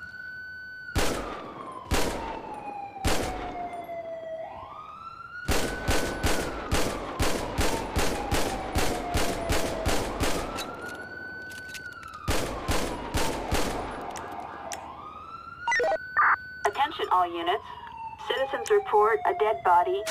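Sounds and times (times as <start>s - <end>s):
wailing siren: 0.0s - 20.0s
pistol gunfire at a shooting range in a video game: 1.0s - 2.4s, 3.0s - 3.6s, 5.5s - 10.6s, 12.3s - 14.0s.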